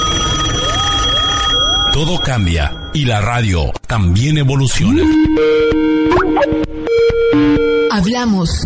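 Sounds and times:
old home landline telephone bell ringing: 0:00.0 - 0:03.0
speech: 0:02.0 - 0:08.6.

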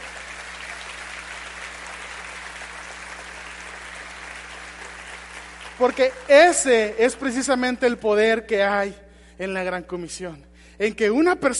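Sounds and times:
large crowd applauding: 0:00.0 - 0:07.4
speech: 0:05.8 - 0:11.5.

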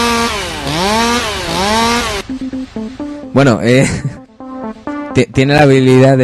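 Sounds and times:
chainsaw revving and idling: 0:00.0 - 0:02.2
speech: 0:03.4 - 0:04.2, 0:05.2 - 0:06.2
laughter: 0:03.7 - 0:04.2.

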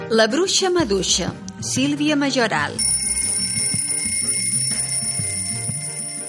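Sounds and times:
speech: 0:00.1 - 0:02.9
bell-like alarm clock ringing: 0:02.8 - 0:06.2.

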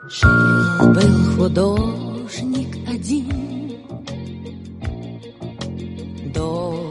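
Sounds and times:
Russian pop song by a female singer: 0:00.2 - 0:04.2, 0:06.2 - 0:06.8.

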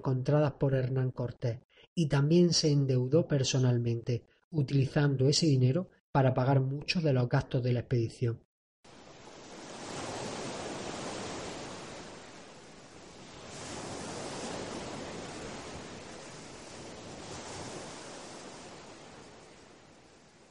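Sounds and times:
speech: 0:00.0 - 0:08.4
steady ocean surf rolling in hissing swells: 0:08.9 - 0:20.4.

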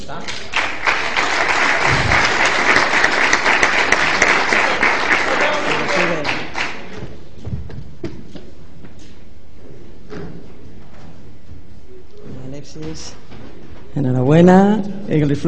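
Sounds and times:
speech: 0:00.1 - 0:00.7, 0:12.9 - 0:13.2, 0:14.0 - 0:15.4
audience applause: 0:00.3 - 0:07.0
low thump: 0:01.9 - 0:02.4.

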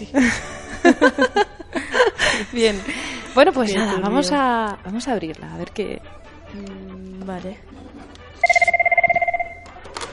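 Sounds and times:
speech: 0:00.0 - 0:01.4, 0:02.5 - 0:07.8
laughter: 0:00.1 - 0:03.9
telephone bell ringing for an incoming call: 0:08.4 - 0:09.8.

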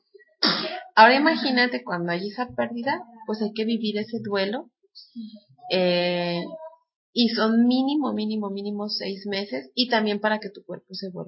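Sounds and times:
person sneezing: 0:00.4 - 0:00.9
speech: 0:01.0 - 0:06.6, 0:07.2 - 0:11.2.

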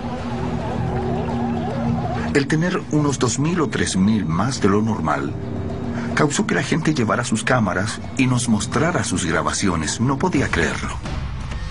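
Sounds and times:
sea lions barking and groaning on a crowded beach: 0:00.0 - 0:03.1
speech: 0:02.3 - 0:05.6, 0:06.2 - 0:11.2.

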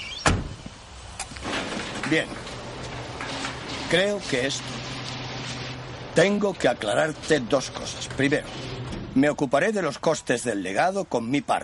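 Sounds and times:
metal roller shutter being raised: 0:01.4 - 0:09.3
speech: 0:02.1 - 0:02.5, 0:03.9 - 0:04.8, 0:06.2 - 0:11.6.

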